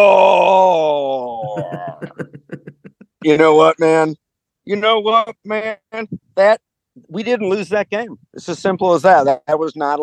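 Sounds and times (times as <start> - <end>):
speech: 0.0 - 0.8, 1.7 - 2.4, 3.2 - 10.0
man imitating a roar with a vocal growl: 0.0 - 2.2
man laughing: 0.8 - 3.6.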